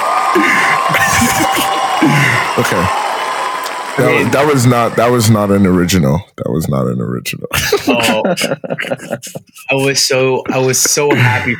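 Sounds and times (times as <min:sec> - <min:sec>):
shouts and whoops: 0:00.0 - 0:04.7
crowd applauding: 0:00.0 - 0:05.9
laughter: 0:00.3 - 0:02.9, 0:07.5 - 0:09.9, 0:10.6 - 0:11.5
speech: 0:02.6 - 0:03.0, 0:04.0 - 0:11.5.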